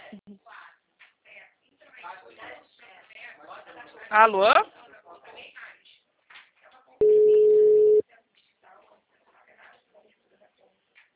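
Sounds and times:
speech: 0:00.2 - 0:00.6, 0:03.8 - 0:04.7
telephone line tone after a dropped call: 0:07.0 - 0:08.0.

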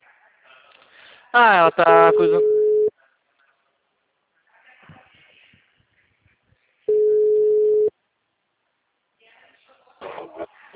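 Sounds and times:
speech: 0:01.3 - 0:02.6
telephone tone after a dropped call: 0:01.9 - 0:02.9, 0:06.9 - 0:07.9.

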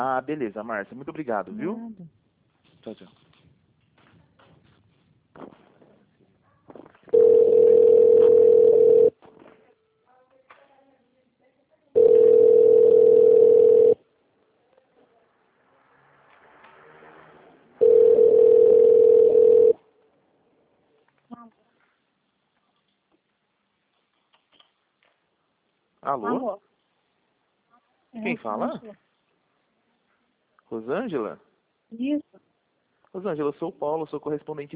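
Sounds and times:
speech: 0:00.0 - 0:02.2, 0:02.8 - 0:03.2, 0:05.4 - 0:05.6, 0:26.1 - 0:26.6, 0:28.2 - 0:29.1, 0:30.7 - 0:32.5, 0:33.2 - 0:34.7
telephone line tone while a call is transferred to an extension: 0:07.1 - 0:09.2, 0:12.0 - 0:14.0, 0:17.8 - 0:19.8.

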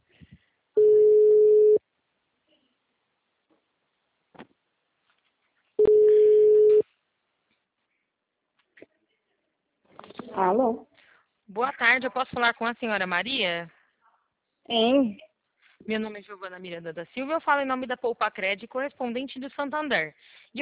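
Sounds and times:
telephone ringing tone on an outgoing call: 0:00.8 - 0:01.8, 0:05.8 - 0:06.8
speech: 0:10.4 - 0:10.9, 0:11.5 - 0:13.8, 0:14.7 - 0:15.2, 0:15.8 - 0:20.6.

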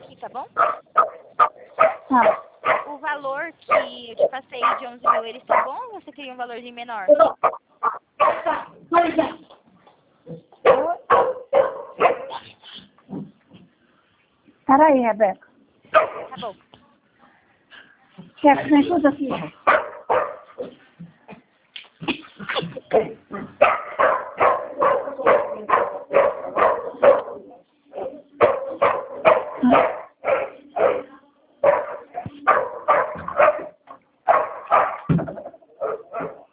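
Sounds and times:
speech: 0:00.2 - 0:00.9, 0:02.1 - 0:02.5, 0:03.1 - 0:07.6, 0:14.7 - 0:15.4, 0:16.4 - 0:16.7, 0:18.4 - 0:19.8
dog barking in high-pitched yappy bursts: 0:00.6 - 0:03.0, 0:03.7 - 0:05.8, 0:07.2 - 0:08.7, 0:10.6 - 0:12.5, 0:15.9 - 0:16.4, 0:19.5 - 0:20.8, 0:22.9 - 0:35.1, 0:35.8 - 0:36.5.

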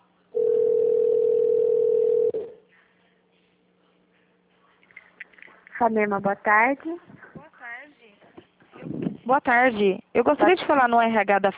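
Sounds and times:
telephone line tone during a call transfer: 0:00.4 - 0:02.6
speech: 0:05.8 - 0:07.1, 0:09.3 - 0:11.5.

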